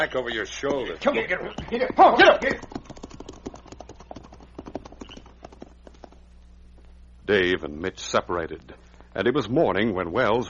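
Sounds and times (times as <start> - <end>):
speech: 0.0 - 2.8, 7.3 - 10.4
several horses' hooves clip-clopping at pace: 0.5 - 6.3.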